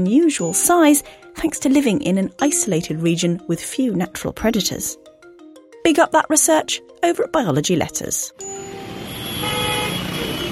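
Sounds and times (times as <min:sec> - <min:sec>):
speech: 0:00.0 - 0:05.0, 0:05.8 - 0:08.6
car horns honking in a traffic jam: 0:08.4 - 0:10.5
dense road traffic rumble in a traffic jam: 0:08.4 - 0:10.5.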